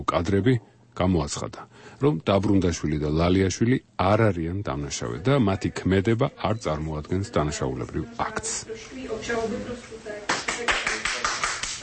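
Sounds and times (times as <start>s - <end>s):
speech: 0.0s - 10.2s
applause at a court verdict: 10.3s - 11.8s.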